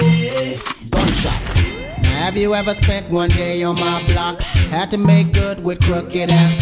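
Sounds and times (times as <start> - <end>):
AK rifle gunshots: 0.9 - 3.1
speech: 2.3 - 6.6.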